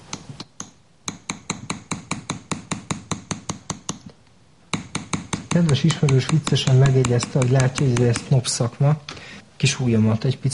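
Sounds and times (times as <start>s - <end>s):
hammer tapping to smooth a metal acanthus leaf cluster: 0.1s - 8.4s
speech: 5.6s - 10.5s.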